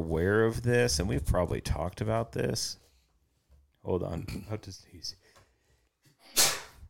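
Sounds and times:
speech: 0:00.0 - 0:02.9, 0:03.8 - 0:05.3
person sneezing: 0:06.3 - 0:06.8.

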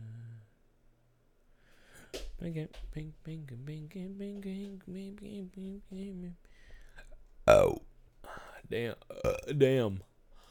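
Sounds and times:
speech: 0:02.4 - 0:06.5, 0:07.5 - 0:07.8, 0:08.7 - 0:10.1
loud burp into the microphone: 0:07.5 - 0:07.8, 0:09.1 - 0:09.6.

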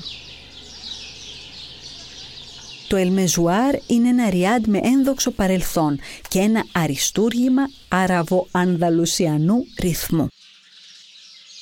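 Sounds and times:
exotic birds chirping: 0:00.0 - 0:11.6
speech: 0:02.9 - 0:10.5.

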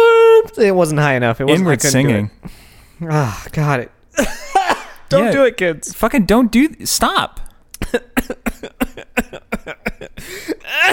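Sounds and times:
speech: 0:00.6 - 0:10.5
strained wheezy breath: 0:02.4 - 0:03.0, 0:10.2 - 0:10.7
harsh hacking coughing: 0:04.2 - 0:05.4, 0:07.8 - 0:10.9.

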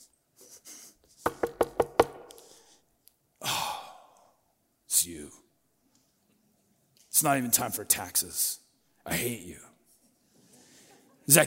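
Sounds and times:
knocking on a door: 0:01.3 - 0:02.2
speech: 0:07.2 - 0:09.7, 0:11.3 - 0:11.4.

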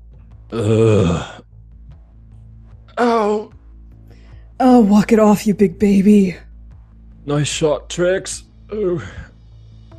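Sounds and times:
speech: 0:00.5 - 0:01.3, 0:04.8 - 0:06.5, 0:07.2 - 0:09.3
person groaning: 0:00.5 - 0:01.4.

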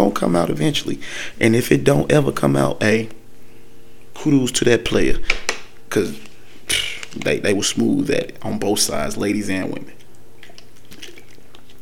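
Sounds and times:
speech: 0:00.0 - 0:03.2, 0:04.2 - 0:10.0
person sipping and swallowing water: 0:06.3 - 0:07.3, 0:09.8 - 0:11.8.

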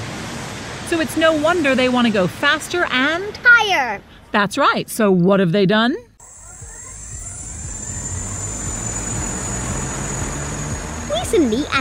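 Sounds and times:
speech: 0:00.9 - 0:06.1, 0:11.3 - 0:11.8
electric flying car propellers spinning up for takeoff: 0:06.2 - 0:11.7.

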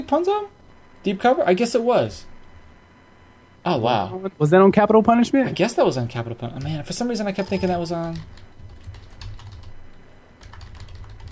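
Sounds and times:
speech: 0:00.0 - 0:02.3, 0:03.6 - 0:08.4
typing and backspacing on a computer keyboard: 0:06.6 - 0:09.8, 0:10.4 - 0:11.3.

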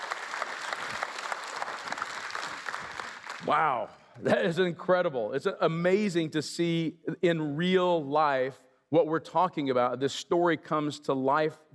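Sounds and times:
audience applause of many hands clapping: 0:00.0 - 0:03.6
speech: 0:03.5 - 0:11.7.

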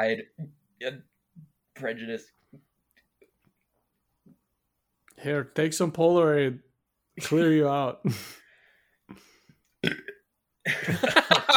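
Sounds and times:
speech: 0:00.0 - 0:01.1, 0:01.8 - 0:02.6, 0:05.2 - 0:08.4, 0:09.1 - 0:10.0, 0:10.6 - 0:11.5
person burping: 0:09.8 - 0:10.3.

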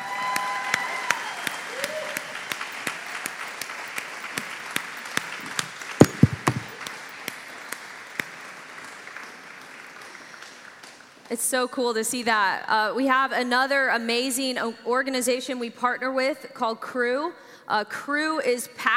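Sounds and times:
faint cheer: 0:00.0 - 0:02.5
crowd applauding: 0:00.0 - 0:11.2
speech: 0:11.3 - 0:18.9.

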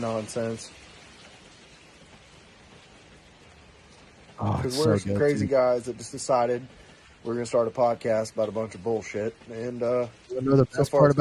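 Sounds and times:
speech: 0:00.0 - 0:00.9, 0:04.4 - 0:11.1
steady rain pouring on a hard surface: 0:00.0 - 0:11.1.

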